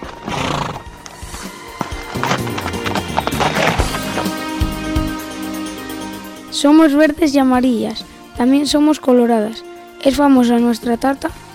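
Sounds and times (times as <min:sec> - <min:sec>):
horse hooves clip-clopping on a hard surface: 0:00.0 - 0:06.0
horse neighing: 0:00.1 - 0:04.5
speech: 0:06.6 - 0:11.4.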